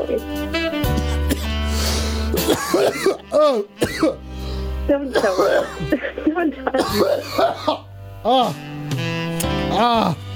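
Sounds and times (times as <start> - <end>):
speech: 0.0 - 0.8, 2.4 - 8.8, 9.8 - 10.2
person coughing: 0.9 - 1.6, 2.3 - 4.2, 5.1 - 8.6.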